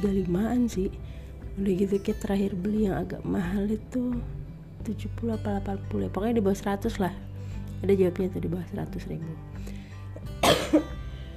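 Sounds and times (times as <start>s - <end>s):
speech: 0.0s - 9.7s, 10.7s - 11.0s
person coughing: 10.4s - 11.0s.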